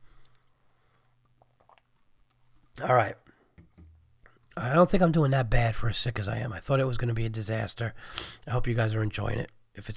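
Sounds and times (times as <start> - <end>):
sipping tea: 0.1 - 2.8
speech: 2.8 - 3.2, 4.6 - 9.9.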